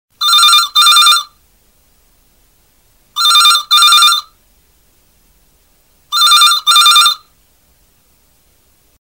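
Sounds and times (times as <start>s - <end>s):
very old telephone: 0.2s - 1.4s, 3.2s - 4.3s, 6.1s - 7.3s.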